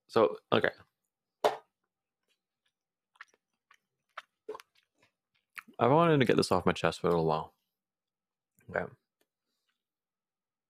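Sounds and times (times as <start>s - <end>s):
speech: 0.1s - 0.8s, 5.8s - 7.6s, 8.7s - 9.0s
chewing food: 2.2s - 5.8s.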